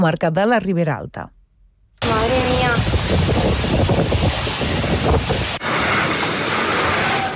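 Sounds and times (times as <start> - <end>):
speech: 0.0 - 1.4, 2.2 - 5.7
rain in Sumacàrcer, Ribera Alta: 2.0 - 7.3
roaring storm wind gusts battering the microphone in Sumacàrcer, Ribera Alta: 2.0 - 7.3.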